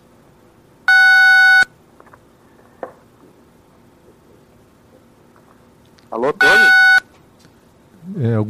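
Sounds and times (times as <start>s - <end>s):
telephone keypad beep during a landline call with line trouble: 0.9s - 1.7s, 6.4s - 7.0s
speech: 6.1s - 6.8s, 8.2s - 8.4s.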